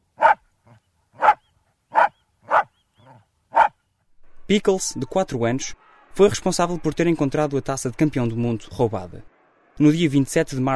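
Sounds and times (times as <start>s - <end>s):
dog barking: 0.2s - 3.8s
speech: 4.5s - 10.7s.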